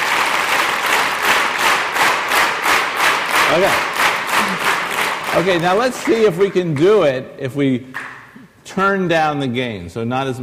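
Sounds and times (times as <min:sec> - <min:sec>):
audience clapping in unison: 0:00.0 - 0:07.2, 0:07.9 - 0:08.3
speech: 0:03.5 - 0:03.9, 0:05.3 - 0:08.0, 0:08.7 - 0:10.4.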